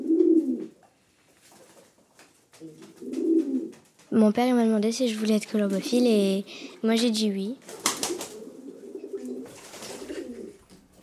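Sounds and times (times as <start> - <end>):
pigeons cooing: 0.0 - 0.8, 2.6 - 3.8, 7.7 - 10.7
speech: 4.1 - 7.8.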